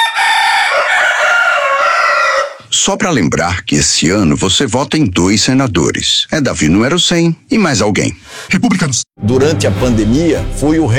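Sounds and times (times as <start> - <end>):
two roosters crowing: 0.0 - 2.7
speech: 2.8 - 10.9.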